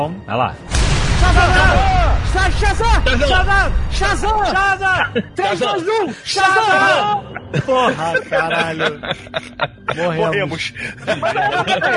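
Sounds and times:
speech: 0:00.0 - 0:11.9
explosion sound effect: 0:00.7 - 0:04.8
laughter: 0:04.8 - 0:11.9.

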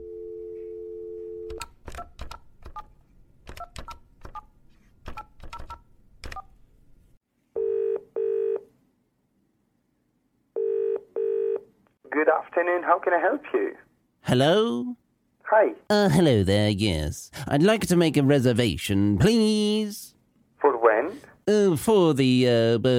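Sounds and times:
telephone dial tone: 0:00.0 - 0:01.6, 0:07.6 - 0:08.6, 0:10.6 - 0:11.6
speech: 0:12.6 - 0:20.1, 0:21.5 - 0:22.9.

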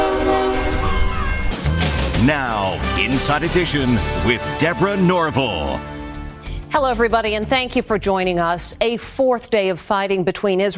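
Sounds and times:
train approaching on a railroad track: 0:00.0 - 0:01.6
train horn blaring: 0:00.0 - 0:06.2
speech: 0:02.2 - 0:06.0, 0:06.7 - 0:10.7.

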